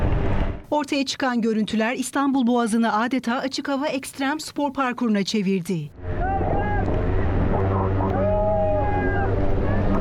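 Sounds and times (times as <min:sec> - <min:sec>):
speech: 0:00.7 - 0:06.2
strong wind on the stormy Bosphorus: 0:06.0 - 0:10.0.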